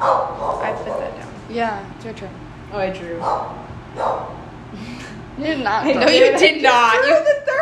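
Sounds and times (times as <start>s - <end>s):
dog barking: 0.0s - 1.2s, 3.2s - 4.4s
speech: 1.5s - 7.5s
laughter: 5.8s - 7.3s.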